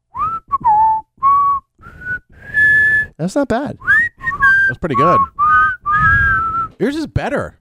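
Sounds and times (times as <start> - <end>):
person whistling a short wavering tune: 0.1 - 3.2, 3.8 - 6.8
speech: 3.2 - 3.9, 4.7 - 5.4, 6.8 - 7.5.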